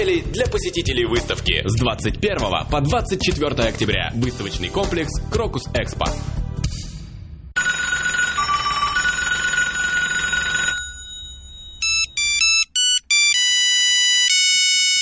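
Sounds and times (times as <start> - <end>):
speech: 0.0 - 6.4
mobile phone ringtone: 7.6 - 15.0
short melodic beeps forming a tune: 11.2 - 14.3.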